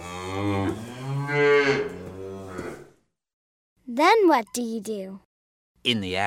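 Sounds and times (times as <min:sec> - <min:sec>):
cow mooing on a farm: 0:00.0 - 0:03.0
speech: 0:04.0 - 0:05.2, 0:05.8 - 0:06.2.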